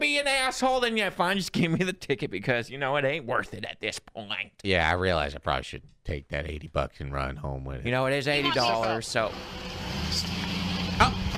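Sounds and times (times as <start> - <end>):
speech: 0.0 - 10.3
car engine droning: 9.0 - 11.3.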